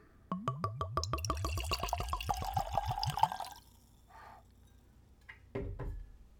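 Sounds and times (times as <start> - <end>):
aquavit glugging from a 750 ml screw-cap bottle into a tulip nosing glass: 0.5 - 3.9.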